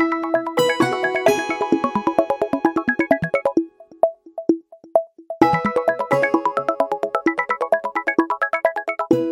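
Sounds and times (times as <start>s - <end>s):
Nokia phone ringtone: 0.2s - 3.7s, 5.4s - 9.1s.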